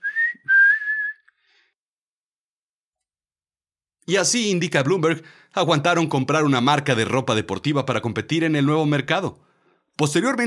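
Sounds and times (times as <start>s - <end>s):
short whistled melody with gliding pitch: 0.0s - 1.6s
speech: 4.1s - 10.4s.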